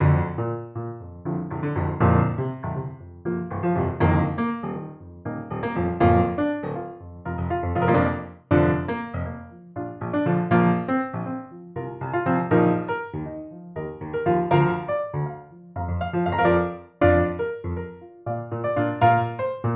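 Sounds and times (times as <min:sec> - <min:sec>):
Steinway piano: 0:00.0 - 0:19.7.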